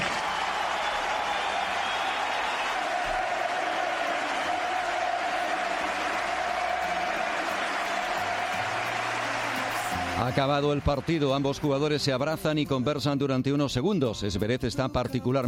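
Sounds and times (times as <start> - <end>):
large stadium crowd ovation with applause and cheering: 0.0 - 12.4
speech: 10.3 - 15.4.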